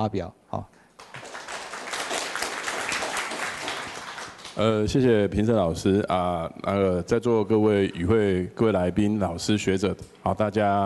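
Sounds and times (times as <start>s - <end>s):
speech: 0.0s - 0.8s, 4.6s - 10.8s
audience clapping at an academic symposium: 0.9s - 4.8s.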